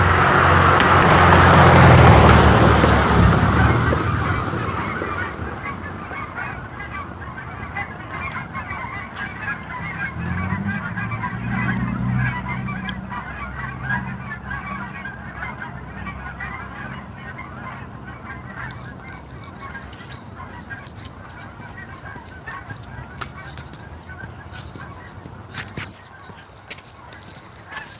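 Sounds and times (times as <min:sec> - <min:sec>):
large flock of geese honking: 0:00.0 - 0:27.9
low rumble of traffic: 0:00.0 - 0:27.9.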